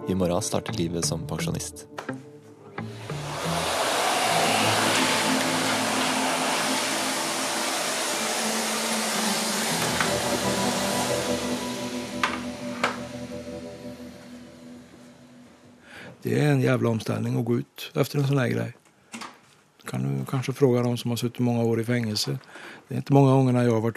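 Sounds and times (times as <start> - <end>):
speech: 0.1 - 2.2, 16.3 - 18.8, 19.9 - 23.9
vacuum cleaner running: 2.8 - 15.8.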